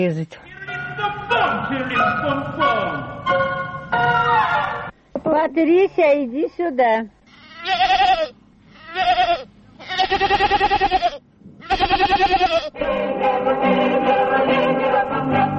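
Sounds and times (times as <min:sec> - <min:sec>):
speech: 0:00.0 - 0:08.3, 0:10.1 - 0:15.4
goat bleating: 0:07.3 - 0:12.8.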